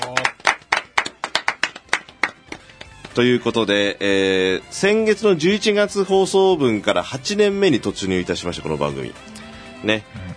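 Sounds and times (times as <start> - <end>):
small group clapping in a live radio studio: 0.0 - 3.4
speech: 3.2 - 10.2.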